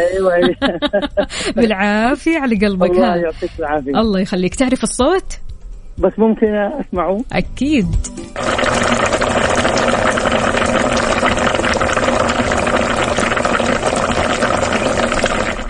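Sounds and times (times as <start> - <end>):
laughter: 0.0 - 1.7
speech: 0.0 - 5.4, 6.0 - 9.4
pot of water boiling on a stove: 8.4 - 15.6.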